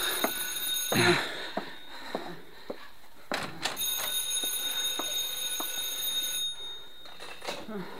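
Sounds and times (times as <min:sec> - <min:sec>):
telephone bell ringing: 0:00.0 - 0:02.1, 0:03.7 - 0:07.9.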